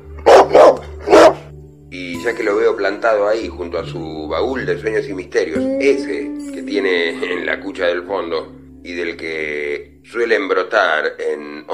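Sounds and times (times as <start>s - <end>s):
dog barking loud and sharp: 0.2s - 1.5s
speech: 2.2s - 11.7s.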